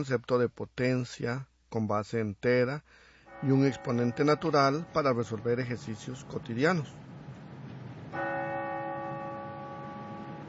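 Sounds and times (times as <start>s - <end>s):
speech: 0.0s - 7.0s
Big Ben clock bell strike at the British Parliament building in London: 3.3s - 6.8s, 8.1s - 10.4s.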